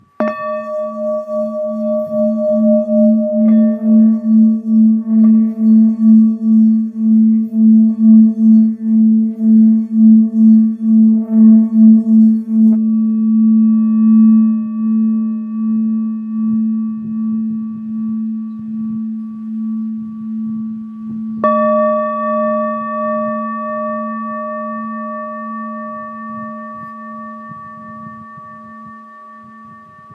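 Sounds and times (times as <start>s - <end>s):
old singing bowl note A: 0.0s - 30.1s.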